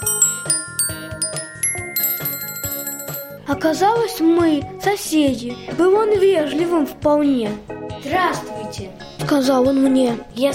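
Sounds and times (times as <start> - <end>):
small copper bell jingling: 0.0 - 3.4
speech: 3.5 - 10.5.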